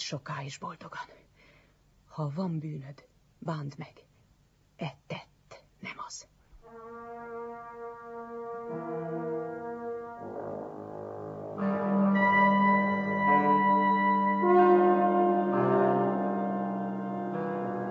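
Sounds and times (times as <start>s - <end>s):
speech: 0.1s - 1.3s, 2.2s - 4.1s, 4.8s - 7.2s
brass horn fanfare signalling a guest's arrival: 6.6s - 17.8s.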